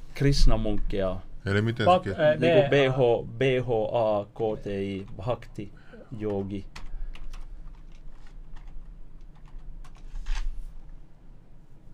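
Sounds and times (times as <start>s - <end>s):
speech: 0.2s - 6.8s
fingers typing on a computer keyboard: 6.2s - 10.4s.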